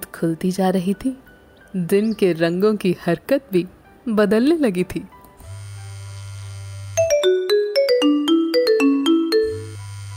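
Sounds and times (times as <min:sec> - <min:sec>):
speech: 0:00.2 - 0:05.1
mobile phone ringtone of bright bell-like electronic tones: 0:06.8 - 0:10.1.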